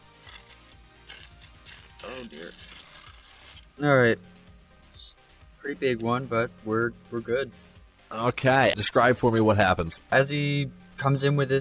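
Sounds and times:
paper being torn: 0.0 - 3.9
speech: 2.3 - 2.6, 3.8 - 4.4, 5.6 - 11.5.

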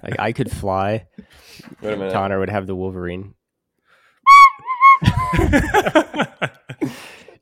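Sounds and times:
speech: 0.0 - 3.4, 5.0 - 7.4
tin whistle blown through the nose: 4.3 - 5.6
laughter: 5.0 - 6.9.

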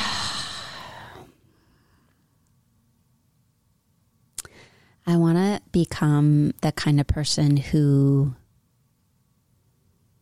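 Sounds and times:
person taking a slow deep breath: 0.0 - 2.2, 4.4 - 5.0
speech: 5.0 - 8.4.

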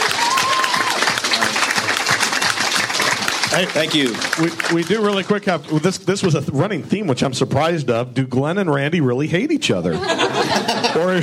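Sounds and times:
audience applauding with dense clapping: 0.0 - 6.4
speech: 3.6 - 11.2
laughter: 9.8 - 11.2.

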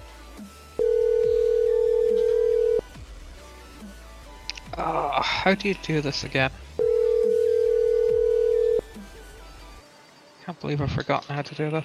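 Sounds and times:
telephone ringing tone as a call is placed: 0.8 - 2.8, 6.8 - 8.8
speech: 5.4 - 6.7, 10.6 - 11.8.

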